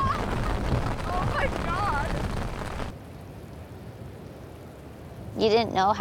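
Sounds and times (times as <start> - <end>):
thunder rumbling from a lightning storm in the Picos de Europa mountains: 0.0 - 3.0
speech: 5.4 - 5.9.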